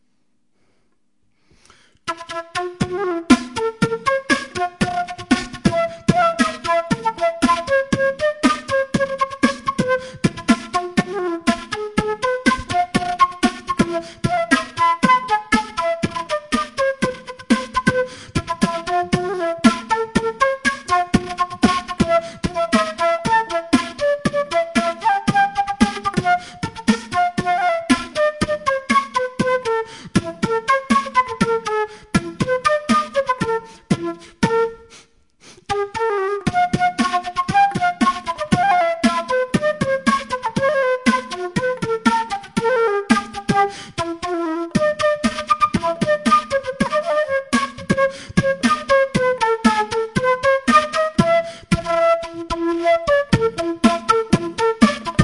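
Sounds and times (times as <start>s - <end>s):
flute beatbox tango: 1.6s - 55.2s.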